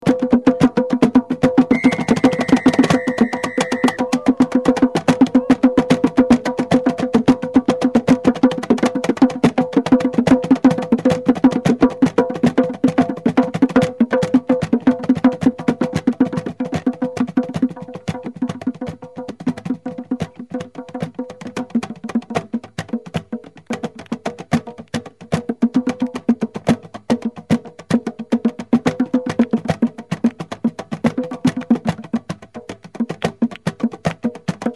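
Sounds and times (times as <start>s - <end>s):
percussion in Salamanca Spain: 0.0s - 34.7s.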